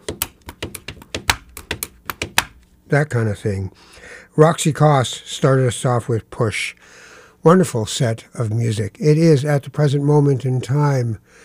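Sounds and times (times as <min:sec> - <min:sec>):
pen tapping on paper: 0:00.0 - 0:02.6
speech: 0:02.9 - 0:11.4.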